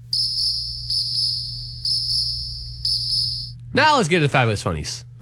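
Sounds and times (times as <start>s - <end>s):
cricket chirping sound effect: 0.1s - 3.6s
speech: 3.7s - 5.1s.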